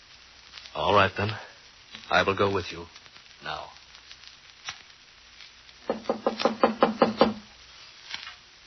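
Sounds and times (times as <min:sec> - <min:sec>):
speech: 0:00.8 - 0:01.5, 0:02.1 - 0:03.8
firm knocking on a door: 0:05.8 - 0:07.5.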